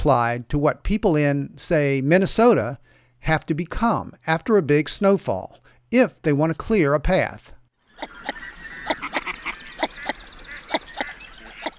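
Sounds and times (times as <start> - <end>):
speech: 0.0 - 9.2
hiss: 0.0 - 11.7
northern shoveler duck calling: 7.9 - 11.7.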